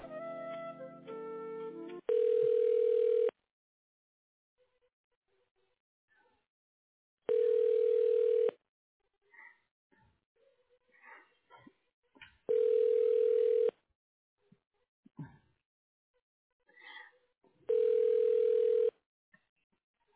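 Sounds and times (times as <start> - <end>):
telephone ringing tone while a call is transferred to voicemail: 2.1 - 3.4, 7.3 - 8.6, 12.5 - 13.8, 17.7 - 19.0.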